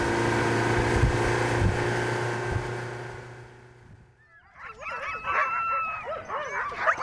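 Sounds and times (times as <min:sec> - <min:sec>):
steady motor drone: 0:00.0 - 0:04.1
tethered huskies barking, yipping and howling: 0:04.2 - 0:07.0.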